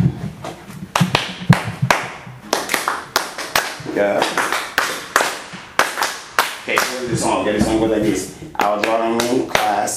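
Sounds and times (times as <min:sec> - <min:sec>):
hands clapping in rhythm: 0:00.9 - 0:07.4, 0:08.6 - 0:09.9
speech: 0:04.0 - 0:04.4, 0:07.4 - 0:09.9.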